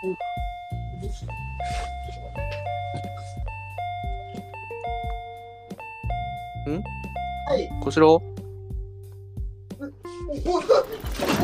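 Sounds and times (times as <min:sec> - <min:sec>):
speech: 0:00.0 - 0:00.4, 0:01.0 - 0:02.6, 0:06.7 - 0:08.4, 0:10.3 - 0:11.4
intercom doorbell chiming two-tone ding-dong in a one-room apartment: 0:00.0 - 0:07.9.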